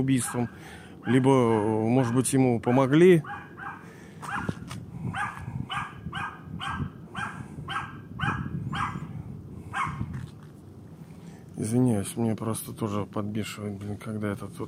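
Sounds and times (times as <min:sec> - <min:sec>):
speech: 0:00.0 - 0:03.5, 0:11.6 - 0:14.6
low rumble: 0:00.0 - 0:14.6
dog barking at night: 0:00.2 - 0:01.3, 0:02.0 - 0:09.1, 0:09.7 - 0:10.1.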